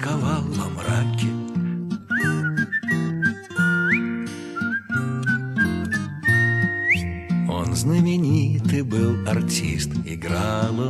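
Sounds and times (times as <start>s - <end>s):
speech: 0.0s - 1.4s, 7.8s - 10.8s
clear melodic whistled tune: 2.0s - 7.3s.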